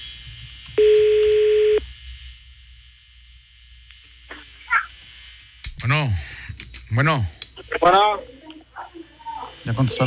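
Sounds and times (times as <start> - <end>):
phone line ringing tone after a redialed call: 0.8 - 1.8
speech: 7.0 - 8.3, 9.6 - 10.0.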